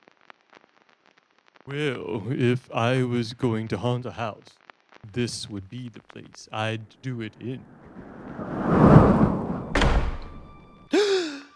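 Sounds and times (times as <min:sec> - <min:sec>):
speech: 0:01.6 - 0:07.8
heavy steel door slamming shut: 0:08.8 - 0:10.6.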